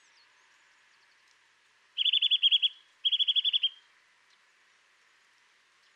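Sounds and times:
Eurasian nuthatch Sitta europaea giving clear repeated piping notes: 0:02.0 - 0:03.8.

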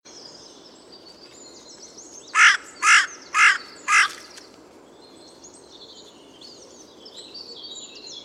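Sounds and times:
carrion crow Corvus corone hoarse grating caws: 0:02.4 - 0:04.3.

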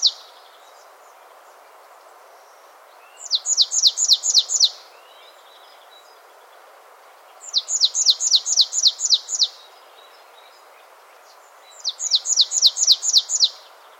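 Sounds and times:
soft hiss: 0:00.0 - 0:13.9
marsh tit (Poecile palustris) calling: 0:03.2 - 0:04.8, 0:07.4 - 0:09.7, 0:11.8 - 0:13.7.

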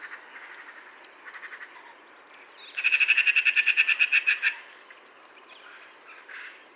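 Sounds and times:
Eurasian magpie Pica pica delivering a harsh rattling chatter: 0:02.8 - 0:04.6.

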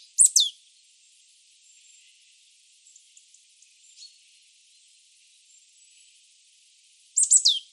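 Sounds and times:
Marsh tit Poecile palustris calls with sharp bursts and falling final note: 0:00.2 - 0:00.5, 0:07.2 - 0:07.6.

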